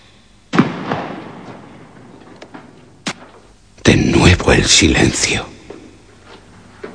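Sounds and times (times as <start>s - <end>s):
distant explosions: 0.5s - 3.5s
speech: 3.9s - 5.5s.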